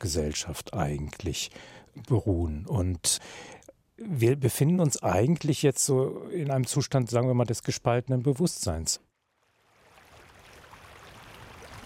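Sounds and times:
speech: 0.0 - 9.1
rushing water of a wild mountain river: 9.4 - 11.8.

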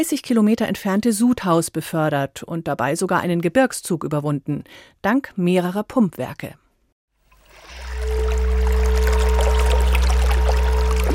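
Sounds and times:
speech: 0.0 - 6.6
bubbling salt-water spring welling up from the ground in Bavaria, Germany: 7.3 - 11.1
low constant hum: 7.8 - 11.1.

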